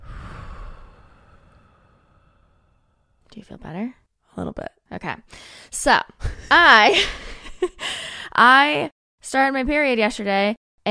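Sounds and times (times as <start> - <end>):
person breathing deeply during a guided relaxation exercise: 0.0 - 3.2
speech: 3.4 - 10.9.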